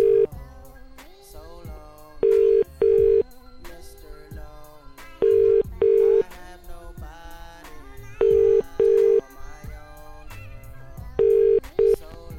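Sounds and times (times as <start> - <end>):
outgoing telephone call ringing tone: 0.0 - 0.3, 2.2 - 3.3, 5.2 - 6.3, 8.2 - 9.3, 11.2 - 12.0.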